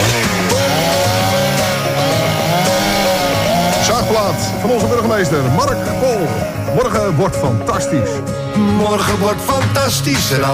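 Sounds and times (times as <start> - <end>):
chainsaw starting and revving: 0.0 - 8.3
speech: 4.6 - 10.5.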